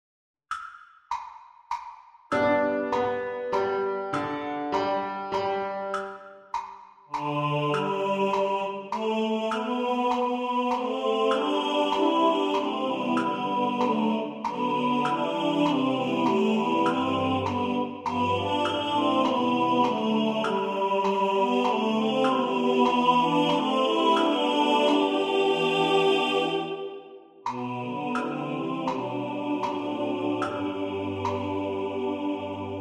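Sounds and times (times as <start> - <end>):
metronome ticking: 0.5 - 25.1, 27.5 - 31.8
tenor singing in the foreground: 7.2 - 32.7.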